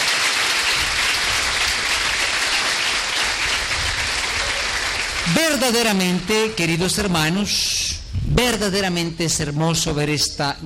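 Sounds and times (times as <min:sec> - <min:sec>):
large crowd applauding loudly: 0:00.0 - 0:06.6
speech: 0:05.3 - 0:10.6.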